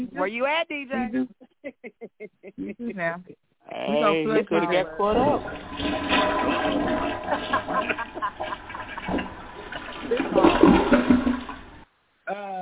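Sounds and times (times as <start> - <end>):
speech: 0.2 - 1.4, 2.7 - 9.2
laughter: 1.0 - 3.3, 3.9 - 5.6, 6.9 - 9.1
toilet flushing: 5.0 - 11.8.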